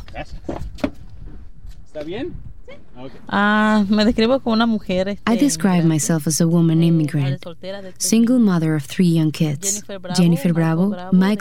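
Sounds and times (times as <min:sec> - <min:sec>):
thumps and rustles of people getting into a car: 0:00.0 - 0:03.0
speech: 0:00.2 - 0:00.6, 0:02.0 - 0:11.3.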